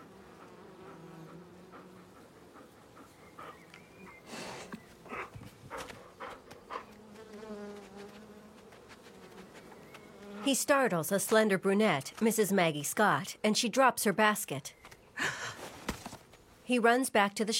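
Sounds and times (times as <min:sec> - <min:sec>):
bees buzzing around wooden hives: 0:00.0 - 0:11.8
breathy snuffling: 0:00.4 - 0:07.0
speech: 0:10.5 - 0:14.8, 0:16.7 - 0:17.5.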